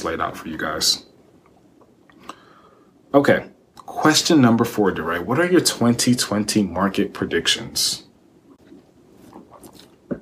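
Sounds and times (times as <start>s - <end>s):
speech: 0.0s - 1.1s, 3.1s - 8.1s
person sipping wine: 8.6s - 10.1s
swallowing: 8.6s - 10.2s.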